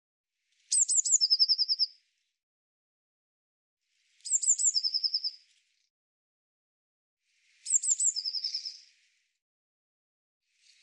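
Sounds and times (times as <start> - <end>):
Eurasian blue tit singing sharp high notes and a buzzy trill: 0.7 - 2.0, 4.2 - 5.5, 7.6 - 8.9.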